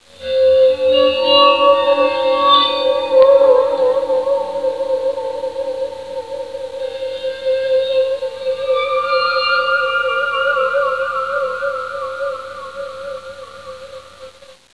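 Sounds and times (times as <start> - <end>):
waterphone: 0.2 - 14.2.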